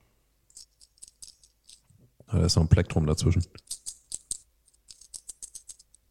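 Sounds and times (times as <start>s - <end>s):
handful of coins rattling in hand: 0.5s - 1.9s, 3.6s - 6.0s
speech: 2.3s - 3.8s.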